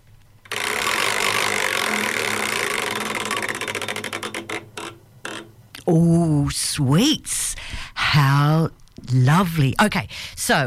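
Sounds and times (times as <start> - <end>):
prize wheel spinning: 0.4 - 5.5
speech: 5.9 - 10.6.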